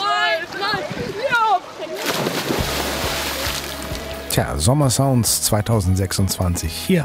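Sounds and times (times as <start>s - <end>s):
lake water churning and sloshing: 0.0s - 4.3s
body plunging into a lake with a splash: 1.9s - 4.1s
speech: 4.4s - 7.0s.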